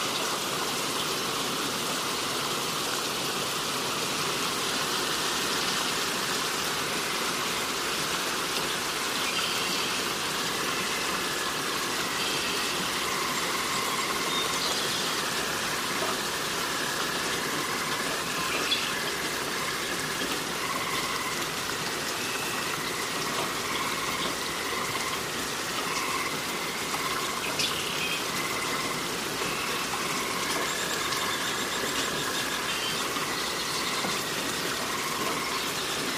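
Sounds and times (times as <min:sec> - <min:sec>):
steady dense rain across the forest: 0:00.0 - 0:36.1
faint higher bird-like tones: 0:08.7 - 0:36.1.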